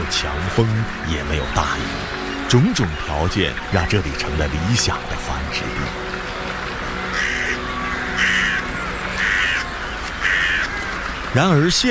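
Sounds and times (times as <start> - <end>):
speech: 0.5 - 6.2, 11.3 - 11.9
crows or ravens cawing: 7.0 - 11.4.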